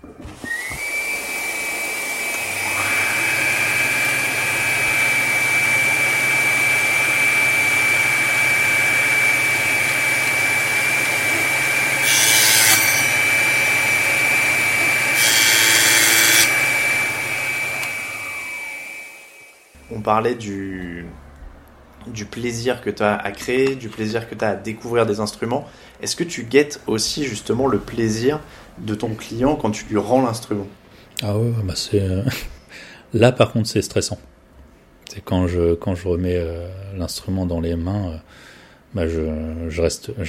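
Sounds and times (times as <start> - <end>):
vacuum running: 0.0 - 20.2
cutting machine whining while cutting beef femur bone: 0.4 - 19.8
cutting machine blade grinding into beef femur bone: 12.0 - 13.2, 15.1 - 16.6
speech: 20.1 - 21.2, 22.0 - 34.3, 35.1 - 40.2.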